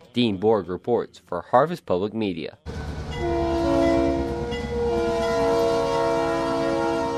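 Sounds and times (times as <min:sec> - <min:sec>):
speech: 0:00.2 - 0:03.4
rail cars being switched alongside grain elevators in Forest City Iowa: 0:02.7 - 0:07.1
freight locomotive horn blaring: 0:03.2 - 0:07.1.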